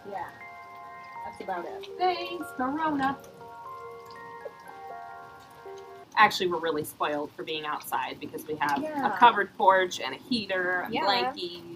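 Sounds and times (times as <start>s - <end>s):
hail falling outside pattering against a surface: 0.0s - 9.2s
speech: 1.4s - 3.4s, 6.2s - 11.7s.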